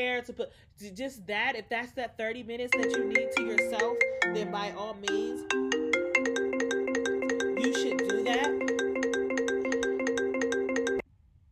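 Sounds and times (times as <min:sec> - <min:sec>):
speech: 0:00.0 - 0:06.4
mobile phone ringtone with bright repeating electronic melody: 0:02.8 - 0:11.0.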